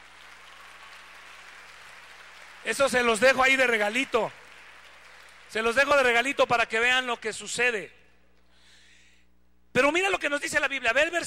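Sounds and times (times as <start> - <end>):
audience applause for actors: 0.0 - 6.2
speech: 2.6 - 4.4, 5.5 - 8.0, 9.8 - 11.2.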